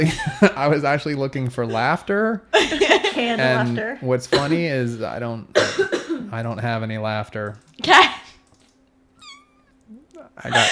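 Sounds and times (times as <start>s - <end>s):
speech: 0.0s - 8.2s, 10.4s - 10.7s
low steady hum: 0.0s - 10.7s
high thin kitten meows: 9.2s - 9.7s.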